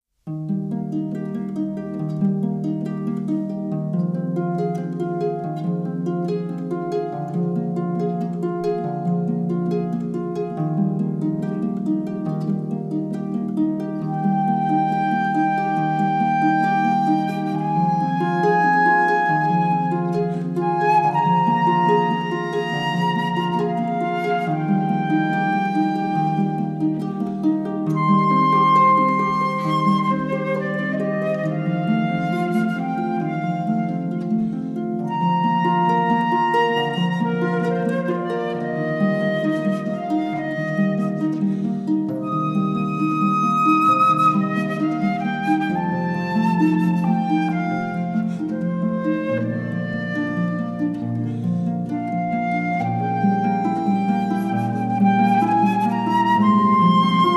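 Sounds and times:
harp: 0.2s - 57.3s
flute: 1.3s - 57.3s.

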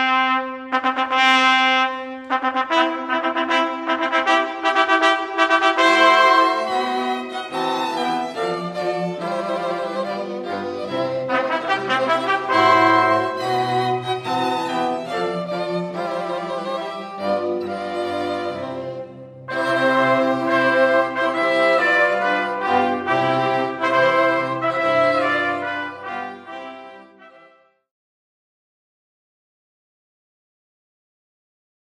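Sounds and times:
string quartet playing a wedding march: 0.2s - 27.6s.

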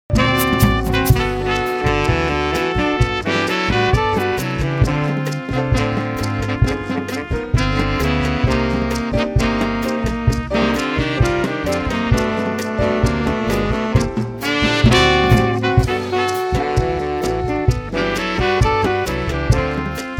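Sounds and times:
swing combo playing: 0.1s - 20.1s.

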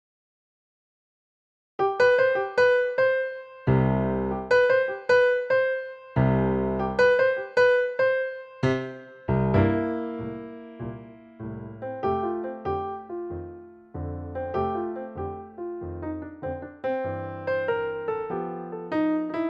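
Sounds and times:
blues piano: 1.8s - 19.4s.

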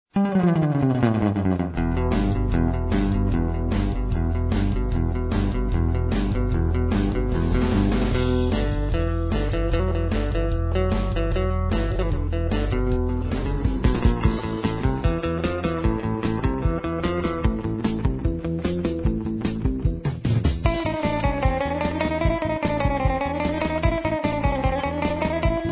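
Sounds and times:
surf guitar instrumental: 0.1s - 25.7s.

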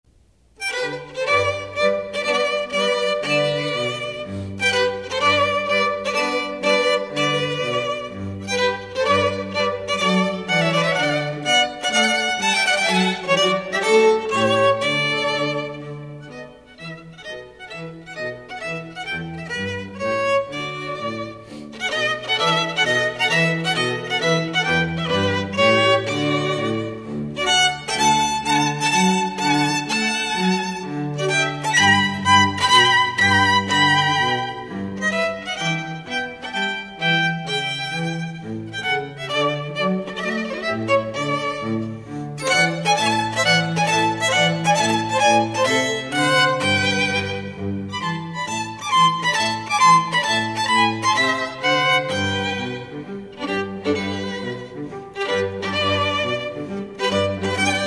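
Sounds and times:
live string trio playing: 0.1s - 57.8s.

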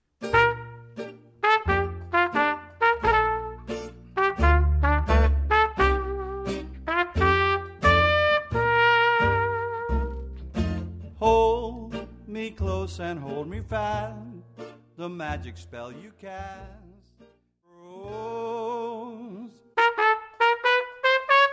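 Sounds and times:
trumpet: 0.2s - 10.4s, 19.8s - 21.5s
banjo: 0.2s - 16.2s
upright bass: 0.2s - 17.3s.

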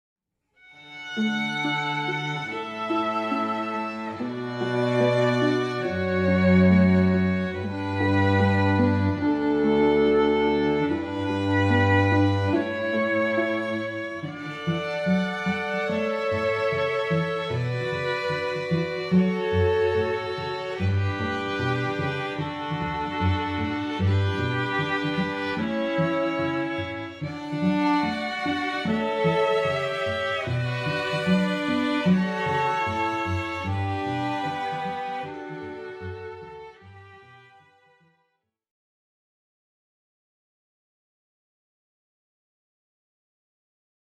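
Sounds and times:
string quartet playing: 0.6s - 38.0s.

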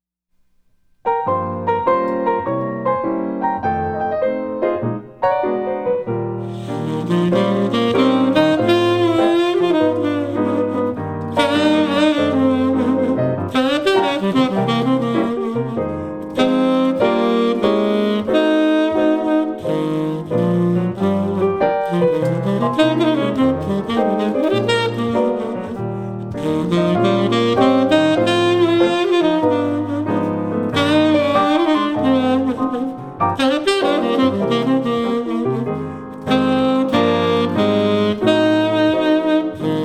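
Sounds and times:
jazz piano duo: 0.3s - 39.8s.

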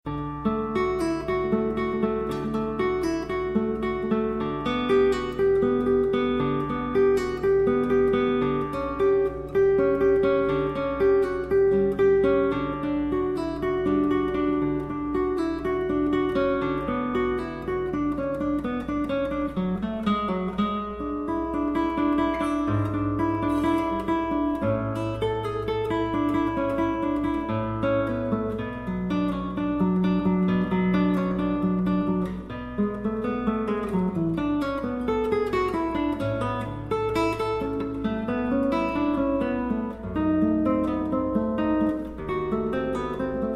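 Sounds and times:
classical piece on acoustic guitar: 0.0s - 43.5s.

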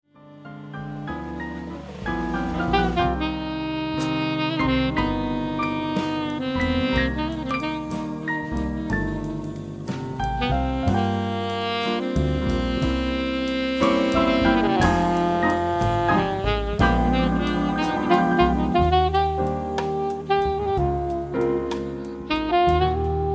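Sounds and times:
jazz band quartet playing: 0.1s - 23.3s.

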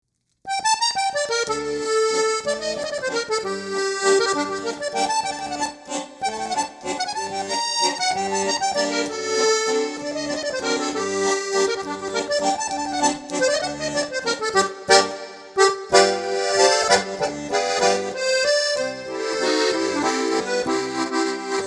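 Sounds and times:
accordion: 0.5s - 21.6s.

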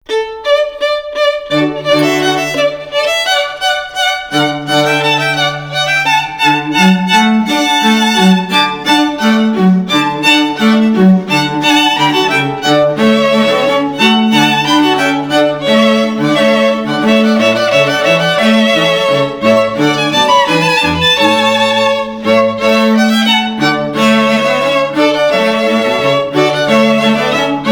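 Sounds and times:
string quartet playing classical music: 0.0s - 27.6s.

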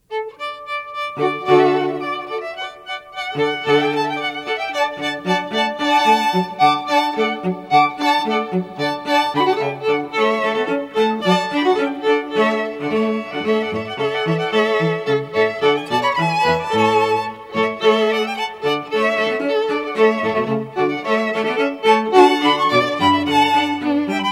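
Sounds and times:
classical music on strings: 0.0s - 24.3s.

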